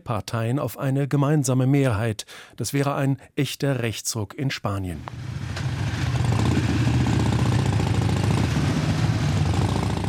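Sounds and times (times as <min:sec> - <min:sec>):
speech: 0:00.1 - 0:05.6
several motorcycles running together: 0:05.0 - 0:10.0.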